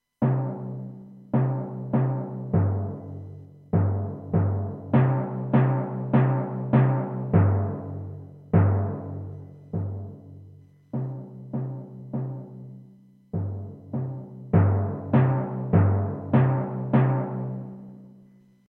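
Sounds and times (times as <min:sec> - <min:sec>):
timpani: 0:00.1 - 0:18.3.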